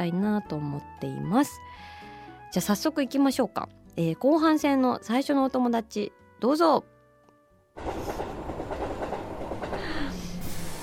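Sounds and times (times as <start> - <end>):
speech: 0.0 - 6.9
Hokuriku Shinkansen train arriving at Toyama station: 7.8 - 10.8.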